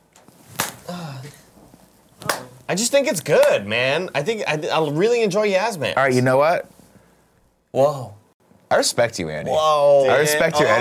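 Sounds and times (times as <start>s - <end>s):
sharp loud slap: 0.5s - 0.9s, 2.2s - 2.6s
speech: 2.7s - 6.7s, 7.7s - 10.7s.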